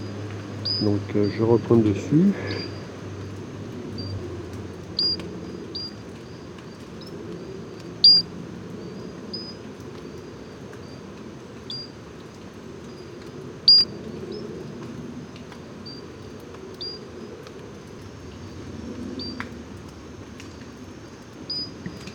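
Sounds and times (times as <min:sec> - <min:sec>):
Pinchon's robber frog calling in Guadeloupe National Park: 0:00.0 - 0:03.3, 0:03.9 - 0:06.8, 0:07.7 - 0:08.3, 0:11.7 - 0:12.0, 0:13.6 - 0:13.9, 0:16.8 - 0:17.0
soft low hum: 0:00.0 - 0:22.1
speech: 0:00.8 - 0:02.6.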